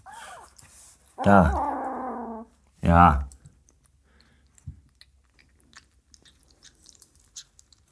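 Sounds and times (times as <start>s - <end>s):
speech: 1.2s - 1.7s, 2.9s - 3.2s
two cats eating from one large bowl: 3.3s - 7.8s.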